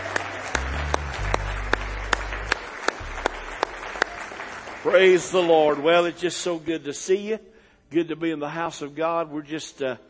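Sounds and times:
deep sustained organ or bass notes: 0.0s - 5.4s
audience applauding in praise: 0.0s - 6.0s
speech: 4.8s - 10.0s.

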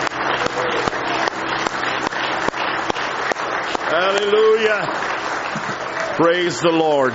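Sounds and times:
audience clapping hands in praise: 0.0s - 7.1s
speech: 3.9s - 7.1s.

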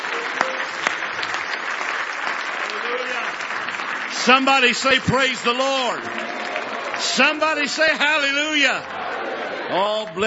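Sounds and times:
congregation clapping hands in praise at a church service: 0.0s - 10.2s
speech: 4.2s - 6.3s, 7.0s - 9.0s, 9.7s - 10.2s.

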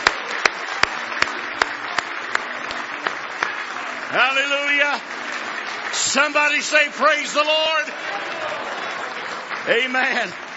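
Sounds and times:
sharp louder claps: 0.0s - 3.7s
audience clapping in praise: 0.0s - 10.5s
speech: 4.1s - 5.2s, 5.9s - 8.7s, 9.6s - 10.4s.

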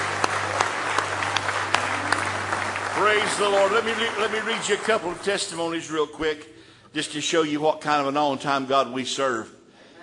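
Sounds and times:
church congregation clapping hands in praise during a morning service: 0.0s - 6.2s
speech: 3.1s - 9.6s.

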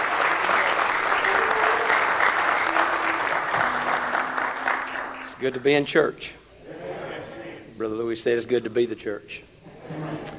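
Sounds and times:
audience clapping hands: 0.0s - 5.7s
speech: 5.4s - 6.4s, 7.8s - 10.3s.

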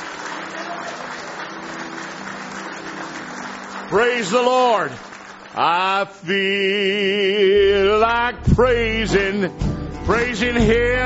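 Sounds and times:
audience clapping in praise: 0.0s - 7.2s
speech: 3.9s - 11.0s.

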